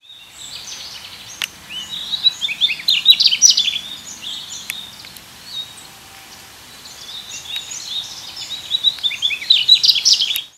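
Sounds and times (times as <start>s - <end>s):
mugimaki flycatcher singing in a park: 0.0s - 10.5s.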